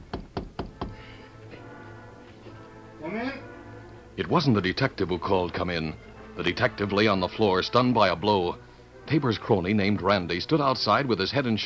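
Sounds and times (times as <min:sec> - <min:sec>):
knocking on the wooden door of a first floor hotel room: 0:00.0 - 0:01.0
speech: 0:03.0 - 0:03.5, 0:04.2 - 0:11.6.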